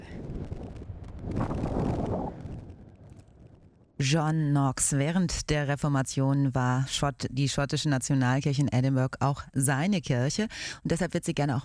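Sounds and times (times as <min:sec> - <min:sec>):
wind rushing across the microphone: 0:00.0 - 0:03.8
speech: 0:04.0 - 0:11.6.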